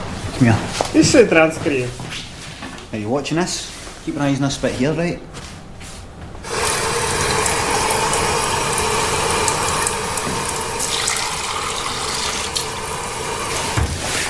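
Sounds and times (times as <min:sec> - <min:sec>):
speech: 0:00.4 - 0:02.0, 0:02.9 - 0:05.3
water running from a tap: 0:06.5 - 0:14.1.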